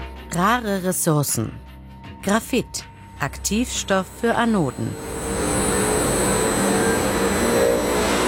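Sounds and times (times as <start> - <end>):
speech: 0.4 - 5.2
faint high-pitched whine of recycling plant: 3.4 - 8.2
recycling plant powering up in a large technical hall in Braunschweig: 4.1 - 8.2.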